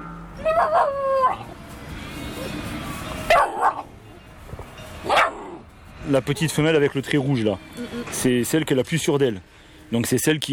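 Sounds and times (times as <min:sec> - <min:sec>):
puppy barking and grumbling: 0:00.4 - 0:01.5, 0:03.3 - 0:03.9, 0:05.1 - 0:05.7
speech: 0:06.1 - 0:10.5.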